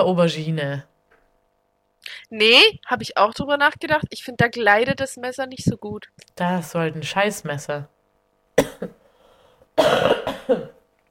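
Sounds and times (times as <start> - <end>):
speech: 0.0 - 0.9, 2.0 - 8.0, 8.6 - 9.0, 9.8 - 10.8
loud hacking coughing: 8.6 - 9.0, 9.8 - 10.8.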